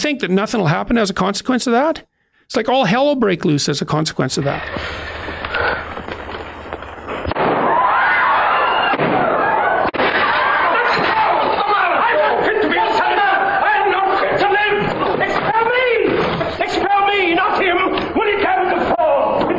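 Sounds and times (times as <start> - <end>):
speech: 0.0 - 5.4
abrupt bang: 5.8 - 8.0, 8.9 - 11.3
gunshot in a movie scene: 7.1 - 8.0, 8.8 - 11.4
dense chaotic din of shouting voices: 7.5 - 19.4.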